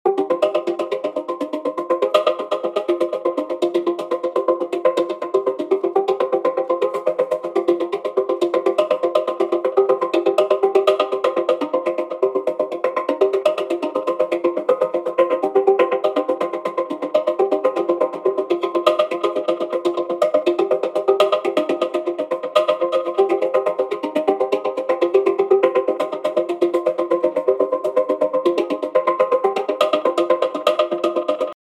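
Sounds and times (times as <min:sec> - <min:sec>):
handpan playing in F minor: 0:00.1 - 0:31.5.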